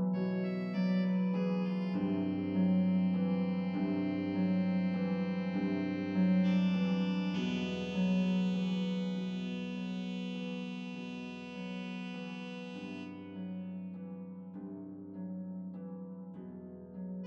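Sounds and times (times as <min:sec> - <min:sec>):
saxophone accompaniment in F: 0:00.2 - 0:13.9.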